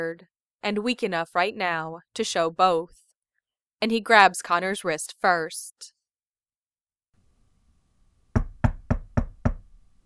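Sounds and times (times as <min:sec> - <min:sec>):
speech: 0:00.0 - 0:03.0, 0:03.8 - 0:06.0
firm knocks on a door: 0:08.3 - 0:09.8.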